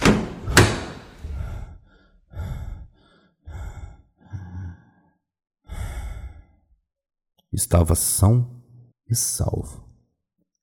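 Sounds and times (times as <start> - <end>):
heavy ragged panting: 0.6 - 5.1
speech: 7.6 - 9.8.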